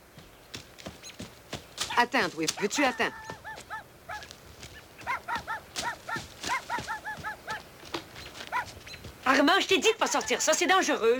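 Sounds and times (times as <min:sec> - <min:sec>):
speech: 0:02.0 - 0:03.3, 0:09.6 - 0:11.1
dogs barking in the woods: 0:02.6 - 0:09.2.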